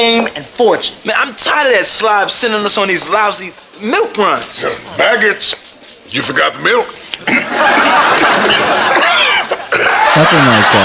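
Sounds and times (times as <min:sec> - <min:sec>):
dense noisy background: 0:00.0 - 0:10.8
speech: 0:00.0 - 0:10.8
man coughing and hacking up a squirrel tail: 0:07.2 - 0:07.7, 0:08.4 - 0:10.2
laughter: 0:07.2 - 0:10.8.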